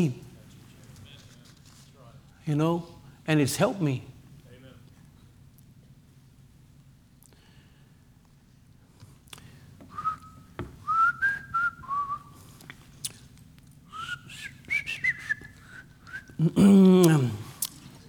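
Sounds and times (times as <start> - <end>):
speech: 0.0 - 0.2, 2.5 - 4.1, 16.4 - 17.4
low steady hum: 0.0 - 18.0
person whistling a simple melody: 9.9 - 12.4, 13.9 - 16.4
brief loud vocal sound: 16.4 - 17.5.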